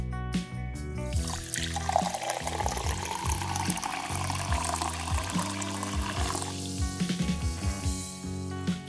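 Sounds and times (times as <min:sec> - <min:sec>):
soft music: 0:00.0 - 0:08.8
sparkling water pouring and fizzing: 0:01.2 - 0:07.2.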